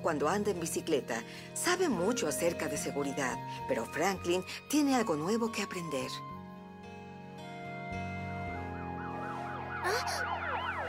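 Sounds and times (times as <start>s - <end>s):
speech: 0.0s - 6.3s
sustained droning musical background: 0.1s - 10.8s
fire truck siren wailing: 8.5s - 10.8s.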